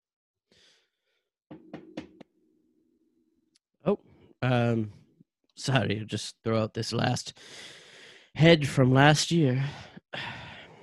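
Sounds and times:
firm knocking on a door: 1.5s - 2.2s
speech: 3.8s - 5.0s, 5.6s - 7.8s, 8.4s - 10.3s.

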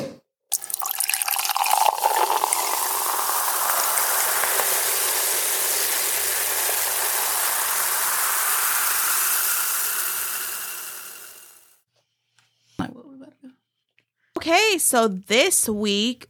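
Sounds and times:
wine pouring with a fizzing bubbling hiss: 0.5s - 11.7s
speech: 14.7s - 16.2s.

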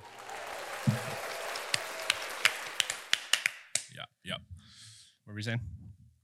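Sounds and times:
brief quiet scattered applause: 0.0s - 3.9s
speech: 5.4s - 5.8s.

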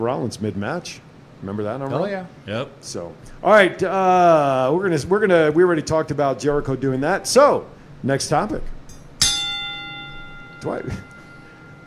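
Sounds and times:
speech: 0.0s - 8.8s, 10.6s - 11.1s
wrestling ring bell struck with a stuttering hit: 8.9s - 11.8s.

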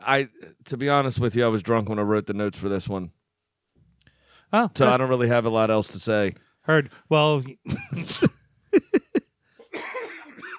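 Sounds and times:
speech: 0.0s - 3.2s, 4.5s - 8.2s
person laughing: 7.6s - 10.1s
person coughing while laughing: 9.6s - 10.5s.

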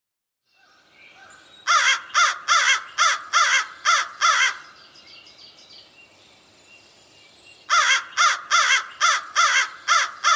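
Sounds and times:
faint birds: 0.4s - 10.3s
American crow cawing: 1.7s - 4.6s, 7.7s - 10.3s.

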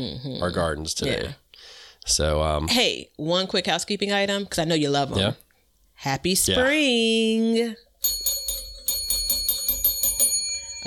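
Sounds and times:
speech: 0.0s - 5.4s, 6.0s - 7.8s
bright metallic bell ringing: 8.0s - 10.8s.

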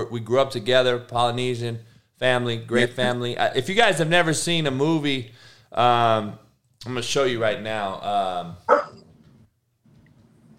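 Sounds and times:
speech: 0.0s - 8.9s
German Shepherd dog barking while fighting: 8.7s - 9.0s.

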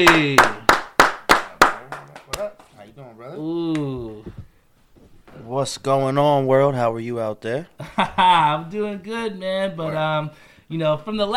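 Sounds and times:
speech: 0.0s - 0.6s, 5.6s - 11.3s
applause: 0.0s - 2.7s.

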